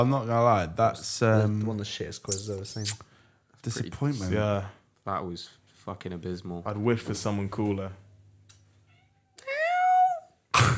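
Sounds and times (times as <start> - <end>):
speech: 0.0 - 8.0
cat meowing: 8.9 - 10.3.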